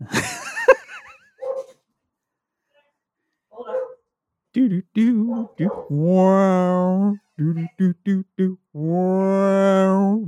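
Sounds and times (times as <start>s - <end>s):
laughter: 0.0s - 1.4s
female dog barking and yelping: 1.4s - 1.8s, 3.6s - 4.0s, 5.2s - 6.1s
speech: 4.7s - 10.2s.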